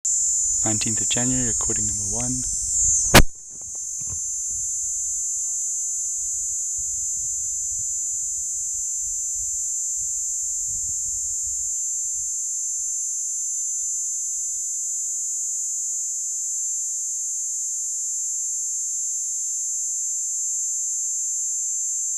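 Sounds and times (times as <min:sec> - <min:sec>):
P. plumosa calling on a farm: 0:00.1 - 0:15.3
faint low rumbles: 0:00.4 - 0:12.3
speech: 0:00.6 - 0:02.6.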